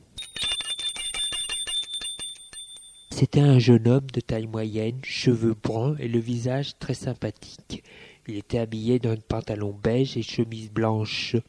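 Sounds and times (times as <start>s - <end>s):
bell at a gate ringing in a rapid trill: 0.0s - 3.3s
speech: 3.2s - 11.4s.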